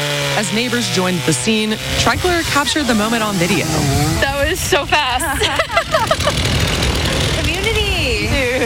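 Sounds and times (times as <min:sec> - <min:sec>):
chainsaw bucking a fallen tree: 0:00.0 - 0:08.5
speech: 0:00.4 - 0:06.7
laughter: 0:05.0 - 0:07.6.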